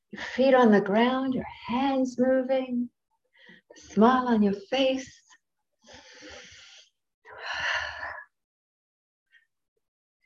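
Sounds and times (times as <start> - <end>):
speech: 0.1 - 3.0, 3.7 - 5.2
heavy breathing during exercise: 5.8 - 8.2.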